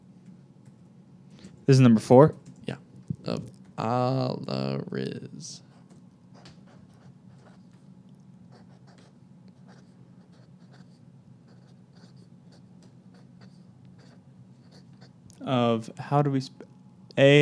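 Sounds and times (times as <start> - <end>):
speech: 1.7 - 5.7, 15.5 - 16.6, 17.2 - 17.3
worn fat-tipped Sharpie marker scratching across paper: 5.7 - 7.7, 8.5 - 15.1.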